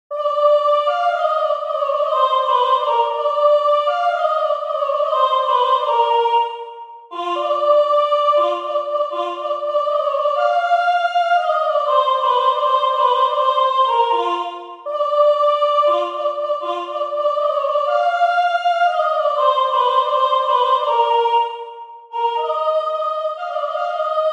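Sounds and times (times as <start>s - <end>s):
soprano singing: 0.1s - 24.3s.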